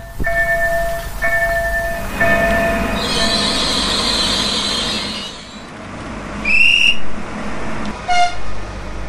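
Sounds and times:
high metallic squeals of train wheels: 0.0 - 5.7
train arriving at and leaving a station platform: 0.0 - 9.0
speech: 0.2 - 0.4
sharp screeching bursts of train: 2.1 - 5.7.

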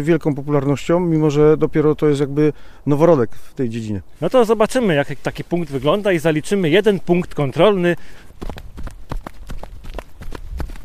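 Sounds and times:
speech: 0.0 - 9.2
group of people running footsteps on soft forest ground: 4.1 - 10.8.

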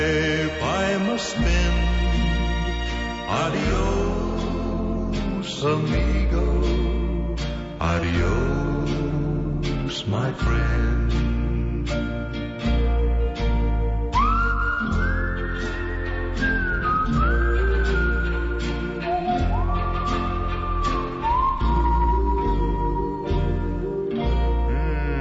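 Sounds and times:
instrumental backing with a low rhythmic pulse: 0.0 - 25.1
whistled song melody with sliding held notes and trills: 0.0 - 25.1
speech: 3.3 - 4.2, 5.6 - 6.7, 7.8 - 9.3, 9.9 - 12.0.

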